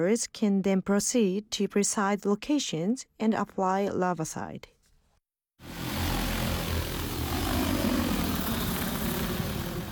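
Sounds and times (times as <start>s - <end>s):
speech: 0.0s - 4.8s
drone propellers buzzing in flight: 5.6s - 9.9s.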